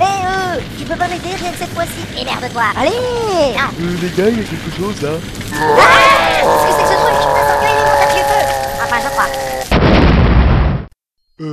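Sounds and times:
speech: 0:00.9 - 0:07.4
roaring explosion: 0:04.0 - 0:10.9.

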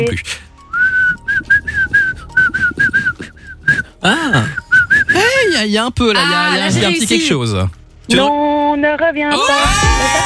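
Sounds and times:
speech: 0:00.0 - 0:00.4, 0:04.0 - 0:04.6, 0:05.6 - 0:10.2
person whistling a melody: 0:00.6 - 0:05.4.

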